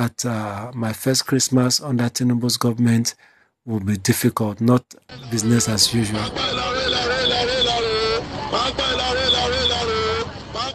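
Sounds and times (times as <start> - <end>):
speech: 0.0 - 7.1
crowd noise at a busy bus station: 5.1 - 10.7
loud tinny megaphone announcements at a busy bus station: 5.1 - 10.7
steady rumble of vehicles at a bus station: 5.1 - 10.7.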